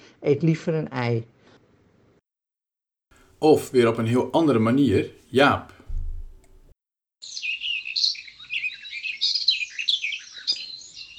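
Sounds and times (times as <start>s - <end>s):
speech: 0.2s - 1.4s, 3.4s - 5.8s
blackbird singing: 7.2s - 11.1s.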